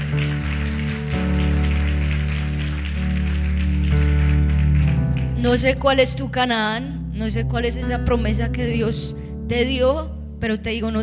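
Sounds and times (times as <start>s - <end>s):
audience applauding: 0.0s - 5.7s
sustained keyboard chords: 0.0s - 11.0s
speech: 5.4s - 11.0s.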